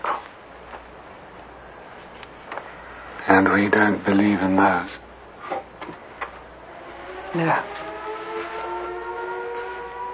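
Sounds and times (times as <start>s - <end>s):
speech: 3.3s - 5.0s, 7.3s - 7.8s
civil defense siren wailing: 6.5s - 10.1s.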